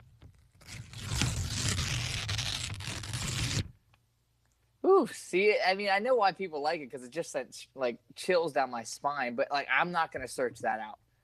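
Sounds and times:
scissors cutting a piece of paper: 0.6s - 3.6s
speech: 5.0s - 11.0s.

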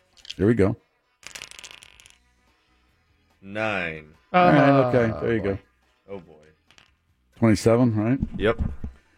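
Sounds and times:
dice being shaken and rolled onto a surface: 0.0s - 0.5s, 1.2s - 2.3s, 6.5s - 7.0s
speech: 0.4s - 0.8s, 3.4s - 6.5s, 7.4s - 8.9s.

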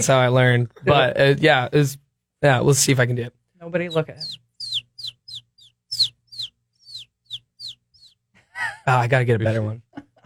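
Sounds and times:
speech: 0.0s - 4.4s, 8.8s - 10.2s
person imitating a bird call with high downward-sweeping chirps: 3.9s - 8.2s.

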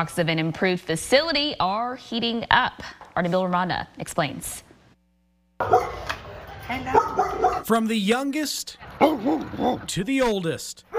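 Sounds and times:
speech: 0.0s - 4.7s, 5.6s - 10.9s
dog barking and yipping at animal shelter: 5.6s - 7.7s, 8.9s - 9.9s.

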